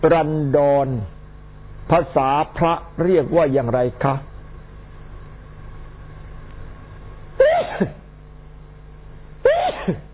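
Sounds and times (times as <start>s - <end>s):
speech: 0.0s - 1.2s, 1.9s - 4.3s, 7.8s - 8.0s
person sneezing: 7.4s - 8.1s, 9.4s - 10.1s.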